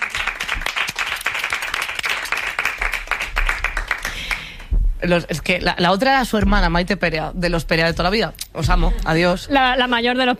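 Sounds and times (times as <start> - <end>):
crowd applauding: 0.0 - 4.7
speech: 5.0 - 10.3.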